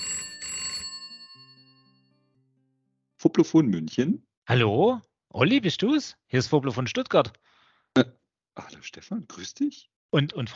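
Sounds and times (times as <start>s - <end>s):
telephone bell ringing in a short rattling burst: 0.0s - 2.1s
speech: 3.4s - 10.5s.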